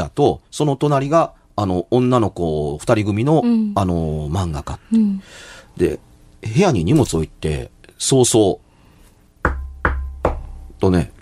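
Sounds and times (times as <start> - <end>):
speech: 0.1 - 8.6, 10.8 - 11.2
knocking on a window: 9.4 - 10.7.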